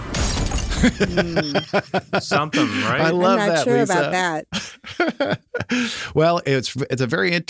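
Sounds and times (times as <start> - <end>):
shattering glass in car crash sound effect: 0.0 - 1.0
laughter: 0.7 - 6.2
speech: 0.8 - 7.4.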